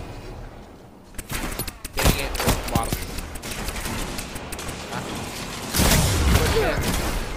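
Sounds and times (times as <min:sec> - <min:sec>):
rapid video game gunfire bursts: 0:01.7 - 0:07.3.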